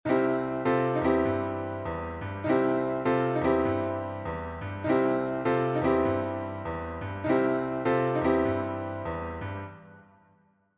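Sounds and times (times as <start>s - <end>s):
blues piano turn: 0.0s - 10.2s.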